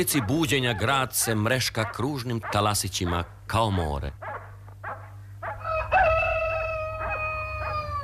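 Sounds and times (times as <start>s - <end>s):
speech: 0.0s - 4.4s
rooster crowing: 5.4s - 8.0s.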